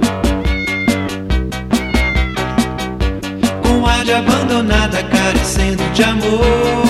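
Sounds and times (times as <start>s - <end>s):
cat meowing: 0.2s - 2.8s
speech: 4.1s - 6.8s.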